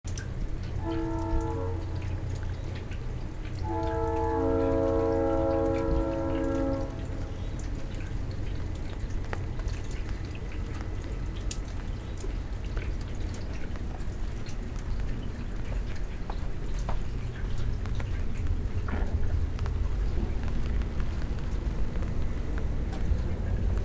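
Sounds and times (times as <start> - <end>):
rain: 0.1 - 23.8
train: 0.6 - 9.6, 15.6 - 23.8
airplane: 0.7 - 23.8.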